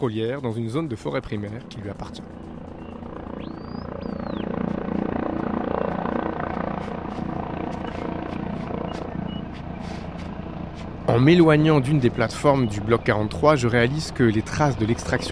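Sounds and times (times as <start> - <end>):
speech: 0.0 - 2.5, 11.2 - 15.2
helicopter droning loudly overhead: 0.0 - 15.2
faint rising whistles: 2.8 - 4.7, 8.8 - 10.0, 11.8 - 13.6.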